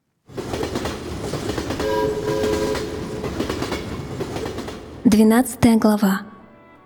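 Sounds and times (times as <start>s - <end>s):
train rumbling along the rails: 0.1s - 5.7s
train horn blast: 1.8s - 3.2s
speech: 5.1s - 6.3s.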